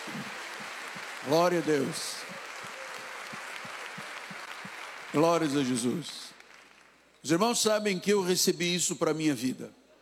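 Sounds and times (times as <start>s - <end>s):
faint applause from a church congregation: 0.0s - 7.0s
speech: 1.2s - 2.2s, 5.2s - 6.2s, 7.2s - 9.8s.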